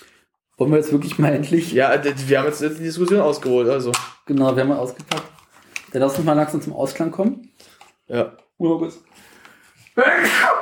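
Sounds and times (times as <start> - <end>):
speech: 0.6 - 5.3, 5.9 - 9.3, 10.0 - 10.6
loud sneeze: 10.1 - 10.6.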